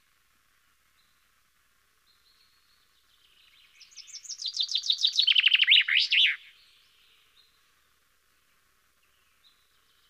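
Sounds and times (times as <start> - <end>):
common chaffinch song: 2.0 - 10.0.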